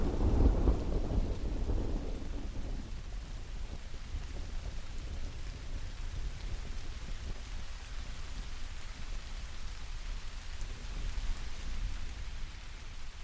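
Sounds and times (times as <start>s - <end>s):
thunder rumbling: 0.0s - 3.9s
steady rain on an island: 0.0s - 13.2s.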